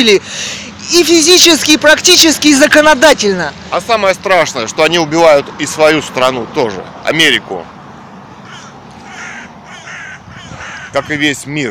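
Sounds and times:
speech: 0.0 - 7.8, 10.9 - 11.7
crow cawing: 8.4 - 11.7.

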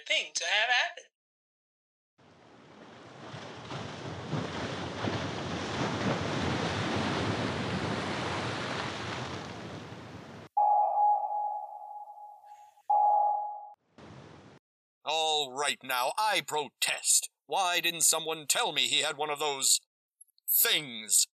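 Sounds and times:
speech: 0.1 - 1.2, 15.1 - 19.9, 20.5 - 21.3
churning rush of water from a submarine diving beneath waves: 2.2 - 9.6
loud ringing sonar pings: 10.6 - 13.8.

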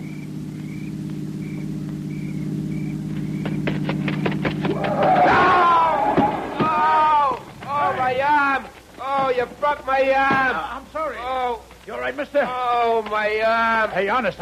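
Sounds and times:
car engine hum: 0.0 - 14.3
knocks and thumps: 3.1 - 10.7
excited voices: 4.7 - 14.3
speech: 9.7 - 14.3.

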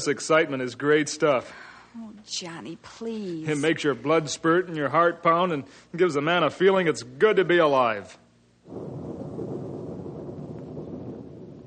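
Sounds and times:
speech: 0.0 - 9.2
thunder rumbling as a storm approaches: 8.6 - 11.6
wind hiss: 8.6 - 11.6.

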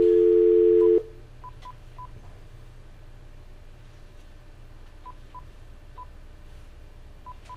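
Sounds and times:
landline dial tone: 0.0 - 1.0.

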